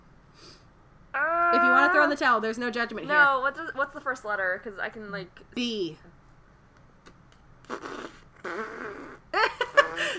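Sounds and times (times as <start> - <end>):
speech: 2.1 - 6.2
person blowing mouth raspberries mimicking farts: 7.6 - 10.1.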